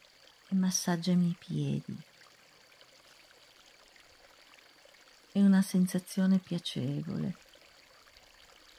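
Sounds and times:
river water flowing and trickling: 0:00.0 - 0:08.7
speech: 0:00.5 - 0:02.1, 0:05.3 - 0:07.4.

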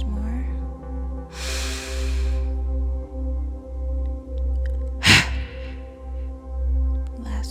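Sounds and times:
soft low pulsing drone: 0:00.0 - 0:07.2
breaths during a morning meditation breathing exercise: 0:01.3 - 0:02.5, 0:05.0 - 0:06.0
short sharp exhalation during a breathing exercise: 0:01.3 - 0:02.5, 0:05.0 - 0:06.0.

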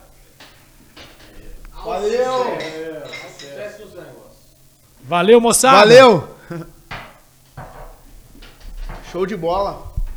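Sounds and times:
laughter: 0:00.0 - 0:10.0
faint voices murmuring: 0:00.0 - 0:10.1
glasses clinking in a toast: 0:00.0 - 0:10.1
speech: 0:01.8 - 0:04.3, 0:05.0 - 0:06.7, 0:09.2 - 0:09.9.

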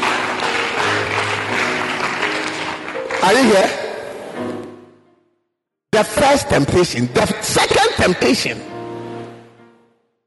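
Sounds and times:
crowd clapping hands: 0:00.0 - 0:03.9
speech: 0:03.2 - 0:03.8, 0:06.0 - 0:08.7.

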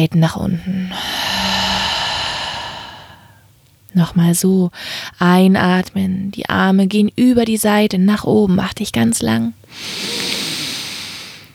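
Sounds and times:
speech: 0:00.0 - 0:01.2, 0:04.0 - 0:10.3
person exhaling through the mouth during a guided breathing exercise: 0:00.9 - 0:03.4, 0:09.7 - 0:11.5.

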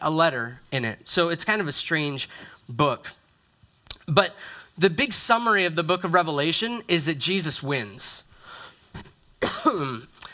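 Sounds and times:
speech: 0:00.0 - 0:03.2, 0:04.1 - 0:08.3, 0:09.0 - 0:10.1
faint breath: 0:02.3 - 0:02.7, 0:04.4 - 0:04.8, 0:08.3 - 0:08.9
person clearing throat: 0:09.4 - 0:10.1
person coughing: 0:09.4 - 0:10.1.

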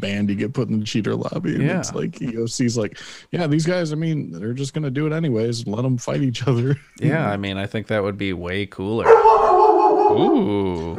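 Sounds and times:
speech: 0:00.0 - 0:09.5, 0:10.1 - 0:10.9
female dog barking: 0:09.0 - 0:10.3.

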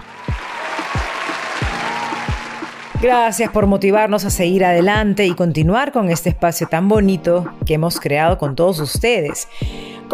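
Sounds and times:
crowd applause and cheering for fifth-year secondary school students: 0:00.0 - 0:03.2
speech: 0:03.0 - 0:10.1.

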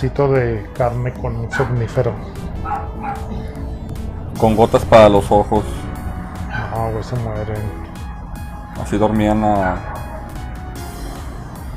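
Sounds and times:
speech: 0:00.0 - 0:03.5, 0:04.4 - 0:05.8, 0:06.8 - 0:07.8, 0:08.8 - 0:10.0
steady low rumble: 0:01.1 - 0:11.7
small dog barking and yipping: 0:01.5 - 0:01.8, 0:02.6 - 0:03.3, 0:06.5 - 0:06.8, 0:09.6 - 0:10.4.

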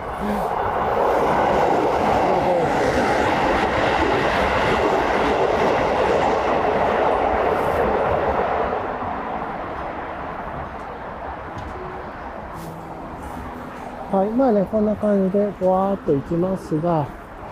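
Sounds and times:
train passing a railroad crossing: 0:00.0 - 0:17.5
speech: 0:00.2 - 0:00.6, 0:14.5 - 0:17.2
clickety-clack of train wheels: 0:01.1 - 0:08.4.

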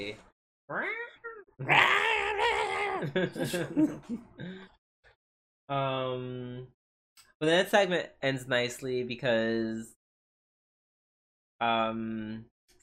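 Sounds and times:
speech: 0:00.0 - 0:02.0, 0:03.0 - 0:04.8, 0:05.7 - 0:06.8, 0:07.4 - 0:10.0, 0:11.6 - 0:12.5
person doing a screaming-cat impression: 0:00.7 - 0:03.1
laughter: 0:02.8 - 0:04.6.

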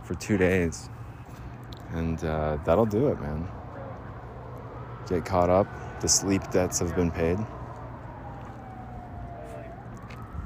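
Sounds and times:
low rumble of outdoor traffic: 0:00.0 - 0:10.4
speech: 0:00.1 - 0:01.0, 0:01.9 - 0:03.6, 0:05.0 - 0:07.6
emergency siren wailing: 0:02.2 - 0:10.4.

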